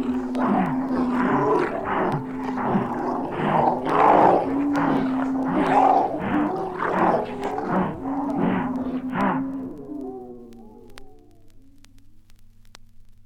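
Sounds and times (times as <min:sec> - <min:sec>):
several wolves snarling and growling: 0:00.0 - 0:10.0
several wolves howling: 0:00.0 - 0:11.5.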